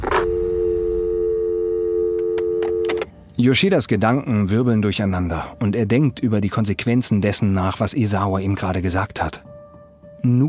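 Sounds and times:
steady continuous telephone busy tone: 0.0 - 3.2
click of a telephone handset hanging up: 2.3 - 3.1
speech: 3.4 - 9.5, 10.2 - 10.4.

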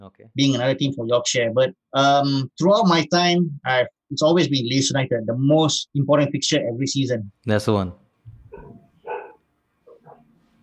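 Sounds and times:
speech: 0.2 - 8.0
small terrier barking: 8.5 - 10.6.

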